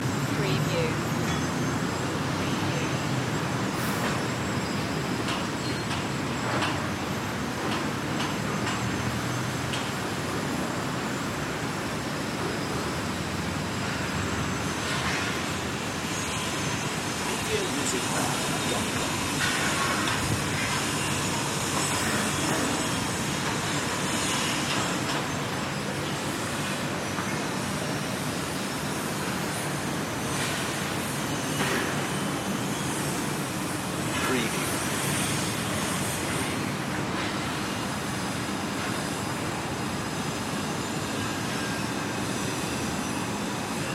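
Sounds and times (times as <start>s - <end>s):
rooftop city ambience: 0.0s - 43.9s.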